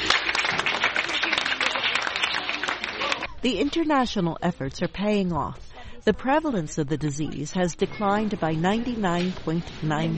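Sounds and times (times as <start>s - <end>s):
audience clapping for a child: 0.0s - 3.3s
speech: 3.4s - 10.1s.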